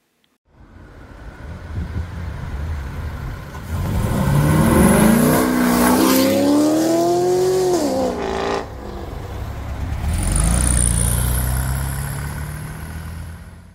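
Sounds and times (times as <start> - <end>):
powerful tuned car engine revving hard: 3.6 - 13.6.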